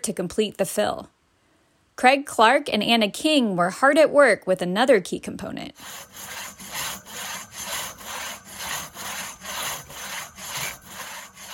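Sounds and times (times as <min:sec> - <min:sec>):
speech: 0:00.0 - 0:01.2, 0:02.0 - 0:06.4
crosscut hand saw rasping through a log in a wilderness area: 0:05.8 - 0:11.5.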